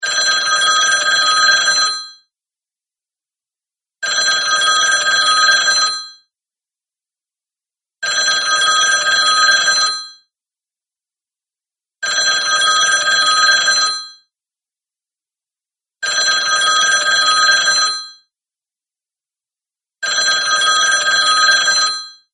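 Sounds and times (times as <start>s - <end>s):
party phone ringtone: 0.0s - 2.2s, 4.1s - 6.2s, 8.0s - 10.2s, 12.0s - 14.2s, 16.1s - 18.3s, 20.0s - 22.3s.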